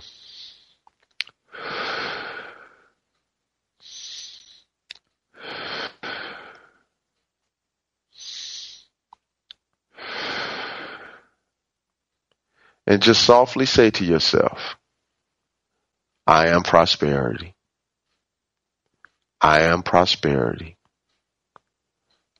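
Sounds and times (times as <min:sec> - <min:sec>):
slow deep abdominal breathing: 0:00.0 - 0:00.9, 0:01.5 - 0:03.0, 0:03.8 - 0:04.7, 0:05.4 - 0:06.9, 0:08.1 - 0:08.9, 0:09.9 - 0:11.4, 0:12.5 - 0:12.8
speech: 0:12.9 - 0:14.8, 0:16.3 - 0:17.6, 0:19.4 - 0:20.8.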